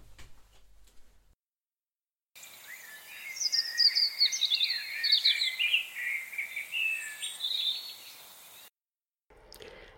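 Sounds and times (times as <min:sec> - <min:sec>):
common blackbird singing from a tree: 0:02.4 - 0:08.7.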